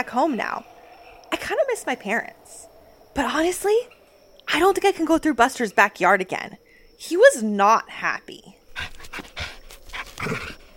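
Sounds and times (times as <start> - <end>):
speech: 0.0 - 0.7, 1.5 - 8.9, 10.2 - 10.5
old dog huffing and panting: 8.7 - 10.7.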